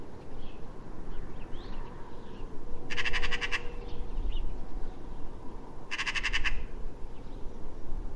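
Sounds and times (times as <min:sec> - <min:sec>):
faint bird calls: 0:00.3 - 0:05.2, 0:05.9 - 0:06.8
Eurasian magpie Pica pica giving harsh rattling chatter: 0:02.9 - 0:03.7, 0:05.9 - 0:06.7.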